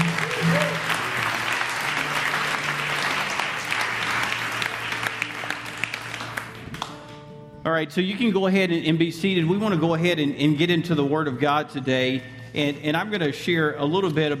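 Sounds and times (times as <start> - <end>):
sustained applause from a large group: 0.0 - 7.1
speech: 7.7 - 14.3.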